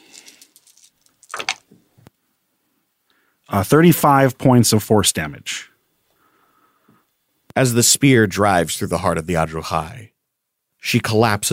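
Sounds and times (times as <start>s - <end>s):
four-sided and ten-sided damage dice rattling across a surface: 0.0s - 1.7s
speech: 3.5s - 5.7s, 7.6s - 10.1s, 10.8s - 11.5s.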